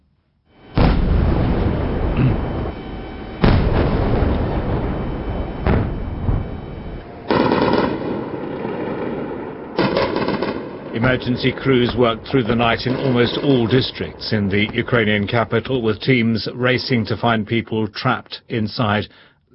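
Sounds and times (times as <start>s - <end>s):
explosions over Kyiv during a drone and missile attack: 0.6s - 15.9s
anti-aircraft fire over Kyiv: 0.6s - 16.8s
speech: 11.0s - 19.3s.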